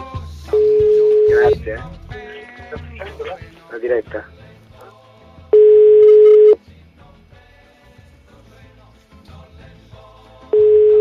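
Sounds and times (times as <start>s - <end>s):
telephone caller-side ringback tone: 0.5s - 1.6s, 5.6s - 6.6s, 10.6s - 11.0s
speech: 1.6s - 4.4s.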